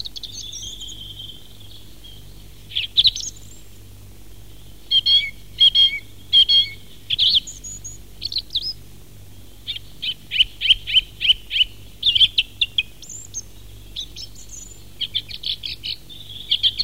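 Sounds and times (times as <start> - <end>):
song thrush song: 0.0 - 16.8.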